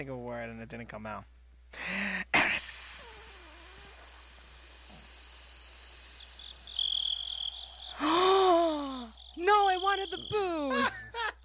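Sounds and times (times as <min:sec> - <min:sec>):
speech: 0:00.0 - 0:03.0, 0:09.4 - 0:11.2
crickets chirping: 0:02.6 - 0:11.4.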